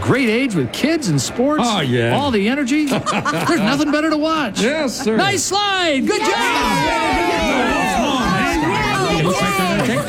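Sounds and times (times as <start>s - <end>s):
crowd cheering at a kids' sports game: 0.0s - 4.3s, 5.2s - 10.0s
speech: 0.1s - 10.0s
laughter: 2.1s - 5.7s, 6.4s - 10.0s.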